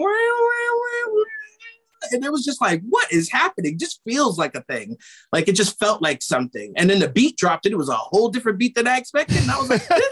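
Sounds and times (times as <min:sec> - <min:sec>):
voice imitating a meowing country steel guitar slide: 0:00.0 - 0:01.8
speech: 0:02.1 - 0:10.1.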